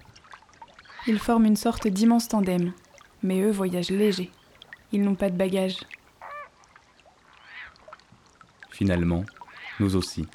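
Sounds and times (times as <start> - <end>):
faint noise: 0.0 - 10.3
greater flamingo softer drawn-out call in a marsh: 0.8 - 1.4, 6.2 - 7.9, 9.4 - 10.0
speech: 1.0 - 6.0, 8.8 - 10.3.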